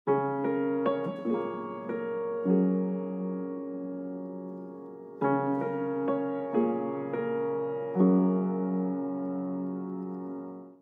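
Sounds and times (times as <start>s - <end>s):
piano: 0.1s - 10.7s.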